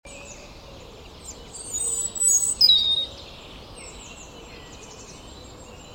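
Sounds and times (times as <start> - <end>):
European robin (Erithacus rubecula) high thin whistled song: 1.2 - 5.9.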